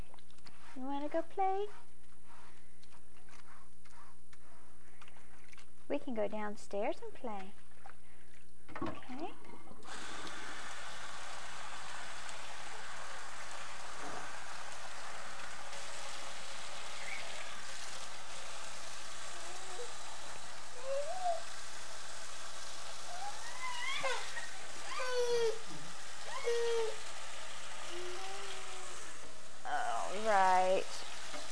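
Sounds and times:
baby bib being rinsed and scrubbed: 0.0s - 31.5s
speech: 0.8s - 1.9s, 5.9s - 7.6s, 8.7s - 10.1s
tap water running into a sink: 9.8s - 31.5s.

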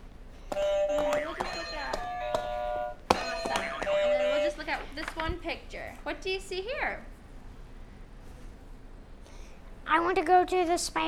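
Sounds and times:
exhibit buzzer steady electronic tone: 0.6s - 4.6s
speech: 5.7s - 7.2s, 9.9s - 11.0s.

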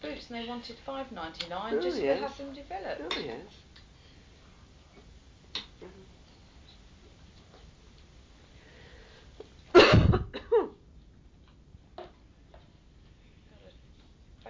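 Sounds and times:
speech: 0.1s - 3.7s
person coughing: 9.7s - 10.8s.

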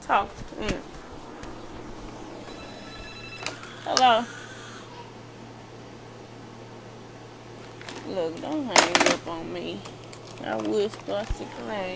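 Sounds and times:
steady low hum and hiss: 0.0s - 11.9s
speech: 0.1s - 0.9s, 3.9s - 4.4s, 8.1s - 11.9s
phone ringing: 2.4s - 4.8s.

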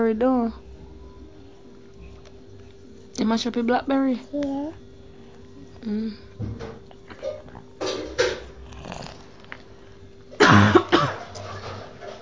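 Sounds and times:
speech: 0.0s - 0.6s, 3.2s - 4.8s, 5.8s - 6.7s
harsh coughs: 10.4s - 11.4s.

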